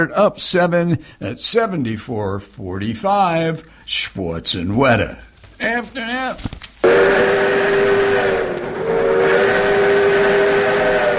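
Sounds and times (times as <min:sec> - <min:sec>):
speech: 0:00.0 - 0:06.5
restored steam train whistle blowing: 0:06.8 - 0:11.1.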